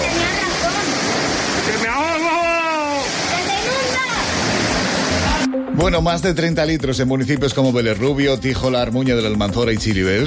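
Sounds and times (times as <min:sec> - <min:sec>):
rushing floodwater after heavy rain: 0:00.0 - 0:05.5
speech: 0:05.8 - 0:10.2.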